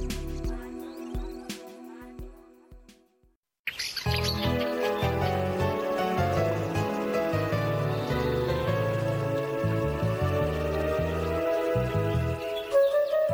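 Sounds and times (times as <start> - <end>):
finch singing a bright melodic song: 3.7 - 13.3.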